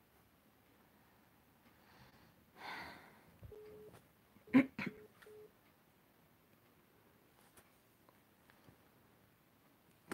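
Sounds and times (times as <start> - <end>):
soft breath: 0.8 - 3.4
phone being dialed with short electronic beeps: 3.5 - 4.0, 5.0 - 5.5.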